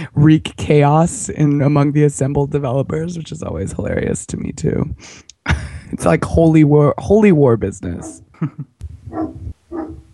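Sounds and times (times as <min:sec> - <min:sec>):
speech: 0:00.0 - 0:09.4
dog barking outside: 0:08.0 - 0:08.3, 0:09.0 - 0:10.1.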